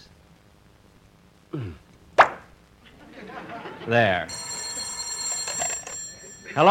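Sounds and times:
brief strained vocal grunt: 0:01.5 - 0:01.8
cork popping from brandy bottle: 0:02.2 - 0:02.5
laughter: 0:02.8 - 0:06.6
speech: 0:03.8 - 0:04.4.

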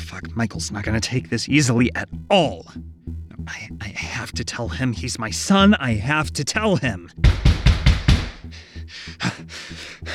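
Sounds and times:
speech: 0:00.1 - 0:07.6, 0:09.1 - 0:10.1
dull rhythmic thuds: 0:02.0 - 0:05.8, 0:06.6 - 0:10.1
loud heavy knocks: 0:07.2 - 0:08.5.

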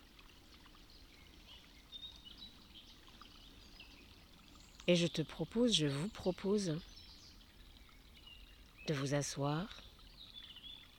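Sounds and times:
faint birds: 0:00.0 - 0:10.9
small forest stream trickling: 0:00.0 - 0:10.9
speech: 0:04.9 - 0:06.9, 0:08.9 - 0:09.9.

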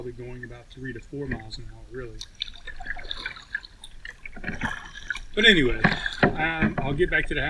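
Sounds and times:
speech: 0:00.0 - 0:03.3, 0:04.4 - 0:04.8, 0:05.4 - 0:07.4
river water flowing: 0:00.0 - 0:07.4.

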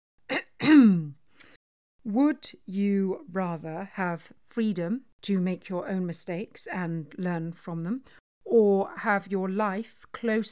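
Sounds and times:
man clearing his throat with a rough cough: 0:00.3 - 0:01.1
speech: 0:02.0 - 0:10.5.

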